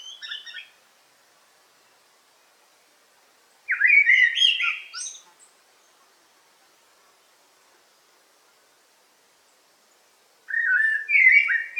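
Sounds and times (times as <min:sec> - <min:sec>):
Eurasian blackbird song in a forest: 0:00.0 - 0:00.8, 0:03.7 - 0:06.0, 0:10.5 - 0:11.7.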